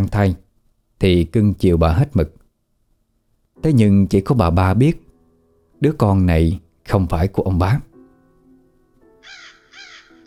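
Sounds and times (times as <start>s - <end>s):
speech: 0.0s - 0.4s, 1.0s - 2.4s, 3.6s - 5.0s, 5.8s - 7.9s
crow cawing in a garden behind a house: 9.2s - 10.2s.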